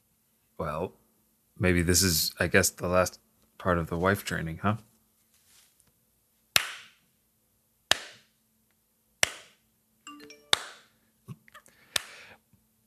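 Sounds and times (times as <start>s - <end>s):
speech: 0.6s - 1.0s, 1.6s - 4.9s
sharp evenly spaced claps or knocks: 6.6s - 7.0s, 7.9s - 8.3s, 9.2s - 9.6s
electronic notification chime signalling a passed lesson: 10.1s - 10.9s.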